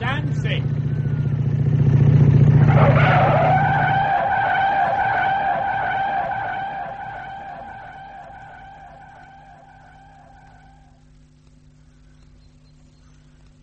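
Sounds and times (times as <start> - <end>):
fast motorbike engine roaring: 0.0 - 11.7
high tyre screech of skidding motorbike: 2.6 - 10.8.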